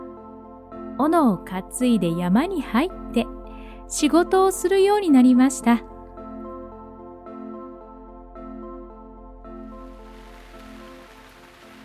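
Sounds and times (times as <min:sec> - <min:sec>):
speech: 0:01.0 - 0:03.3, 0:03.9 - 0:05.9
soft steady rain hiss: 0:09.9 - 0:11.8.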